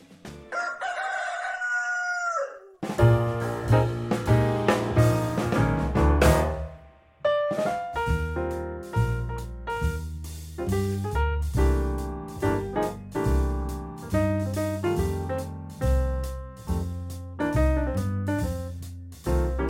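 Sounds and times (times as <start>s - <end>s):
bright instrumental music with a steady beat: 0.0s - 0.5s, 2.8s - 19.6s
Penedès breed rooster crowing: 0.5s - 2.8s.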